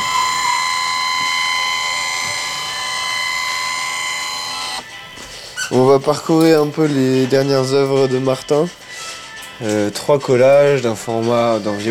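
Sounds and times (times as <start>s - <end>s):
photo scanner scanning photos with a mechanical whir and high-pitched whine: 0.0s - 4.9s
speech: 5.7s - 8.8s, 9.6s - 11.8s.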